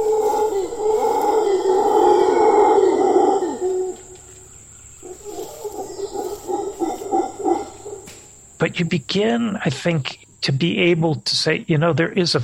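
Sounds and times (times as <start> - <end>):
howler monkeys roaring: 0.0 - 8.7
steady high insect-like hum: 0.0 - 12.4
speech: 8.8 - 12.4.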